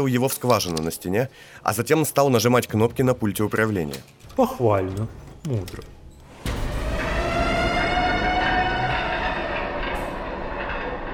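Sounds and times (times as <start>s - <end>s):
speech: 0.0s - 6.0s
steel shutter lowering slowly: 5.9s - 11.1s
heavy rumbling noise: 6.3s - 11.1s
siren wailing outside a window: 6.4s - 11.1s.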